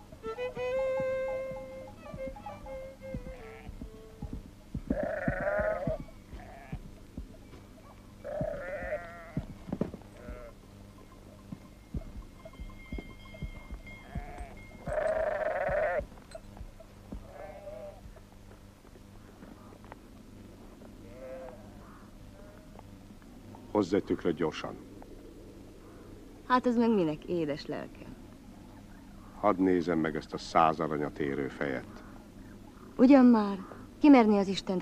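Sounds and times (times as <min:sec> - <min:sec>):
flock of sheep bleating: 0:00.4 - 0:04.3, 0:04.9 - 0:06.9, 0:08.2 - 0:09.5, 0:10.1 - 0:10.6, 0:14.1 - 0:16.1, 0:17.2 - 0:18.0, 0:21.0 - 0:22.7
speech: 0:23.8 - 0:24.9, 0:26.5 - 0:28.1, 0:29.4 - 0:32.0, 0:33.0 - 0:34.8.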